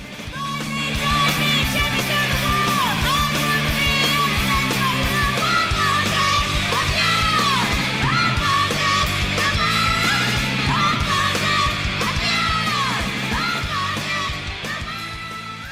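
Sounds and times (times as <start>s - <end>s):
distorted guitars driving a fast steady rhythm: 0.0s - 15.7s
loud dense punk rock track: 0.0s - 15.7s.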